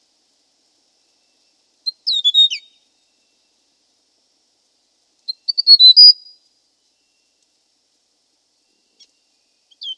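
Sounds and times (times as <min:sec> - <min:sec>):
hill prinia chirps and whistle: 0:01.8 - 0:02.8, 0:05.2 - 0:06.4, 0:08.9 - 0:09.9.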